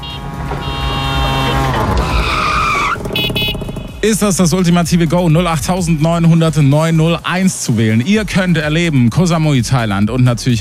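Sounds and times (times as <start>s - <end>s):
sharp squeal: 0.0s - 4.0s
tuk-tuk engine drone: 0.0s - 7.3s
tuk-tuk tyres skidding: 0.0s - 8.6s
speech: 4.0s - 10.5s.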